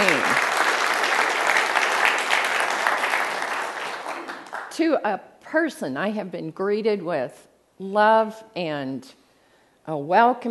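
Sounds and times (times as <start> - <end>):
audience applause at a church gathering: 0.0 - 4.7
speech: 4.8 - 9.2, 9.8 - 10.4.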